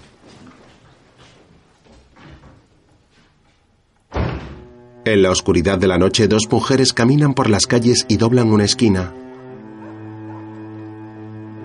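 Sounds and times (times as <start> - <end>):
steady low noise: 0.0 - 11.6
front door swinging shut as someone goes out: 4.1 - 4.8
speech: 5.0 - 9.2.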